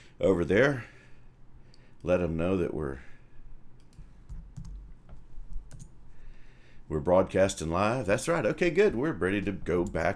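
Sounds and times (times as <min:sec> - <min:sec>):
speech: 0:00.2 - 0:01.0, 0:02.0 - 0:03.1, 0:06.9 - 0:10.1
typing on a computer keyboard: 0:03.8 - 0:05.9.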